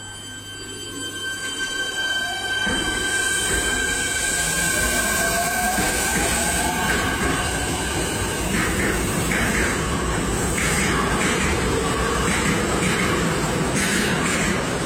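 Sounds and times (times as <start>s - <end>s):
metallic squeals and clatter of electric tram: 0.0s - 8.9s
electric tram motor whine: 0.0s - 14.8s
electric tram wheels rumbling on rails: 2.7s - 14.8s.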